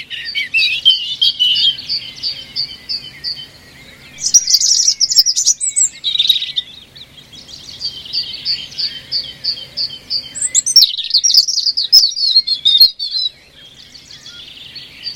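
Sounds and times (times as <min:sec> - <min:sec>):
European robin singing: 0:00.0 - 0:15.1.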